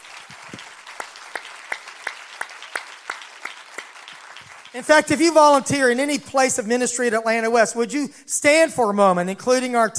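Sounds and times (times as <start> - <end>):
large crowd applauding: 0.0 - 5.1
sharp loud claps: 0.0 - 6.1
speech: 4.8 - 9.9.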